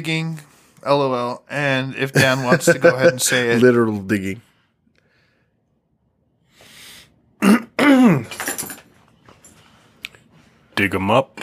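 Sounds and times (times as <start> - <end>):
speech: 0.0 - 4.5, 10.8 - 11.3
man clearing his throat: 7.4 - 8.4.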